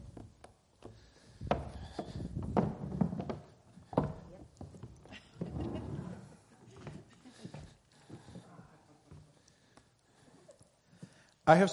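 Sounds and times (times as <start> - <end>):
wooden chairs scraping and knocking across a floor: 1.3 - 4.2, 5.4 - 6.4
speech: 11.5 - 11.7.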